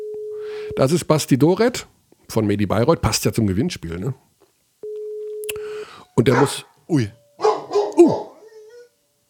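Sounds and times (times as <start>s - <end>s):
telephone ringing tone heard down the line: 0.0s - 0.6s, 4.8s - 5.4s
speech: 0.7s - 4.3s, 6.2s - 7.2s.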